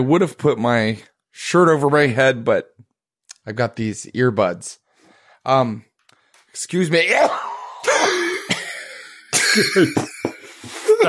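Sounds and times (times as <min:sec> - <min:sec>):
speech: 0:00.0 - 0:02.8, 0:03.4 - 0:04.8, 0:05.4 - 0:05.9, 0:06.6 - 0:07.5, 0:09.6 - 0:10.1
harsh coughing fit: 0:07.1 - 0:11.0.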